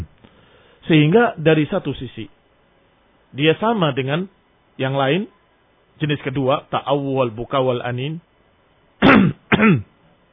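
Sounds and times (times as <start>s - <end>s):
speech: 0.9s - 2.4s, 3.3s - 5.4s, 6.0s - 8.3s, 9.0s - 9.9s
man coughing deliberately to signal someone during prayer: 9.0s - 9.9s.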